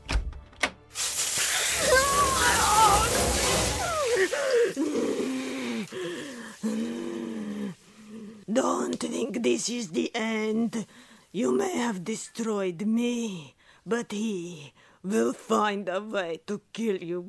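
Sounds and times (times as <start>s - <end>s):
water spraying from a shower hose: 0.9s - 7.5s
person groaning and wailing in strained cries: 1.6s - 8.3s
speech: 8.6s - 17.2s.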